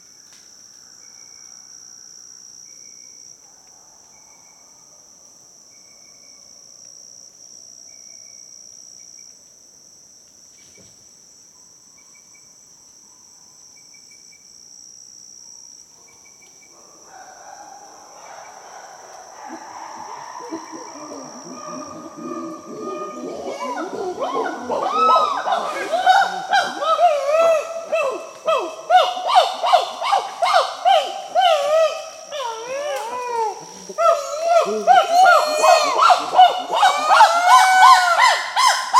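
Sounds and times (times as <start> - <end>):
chimpanzees in Gabon: 16.9 - 38.9.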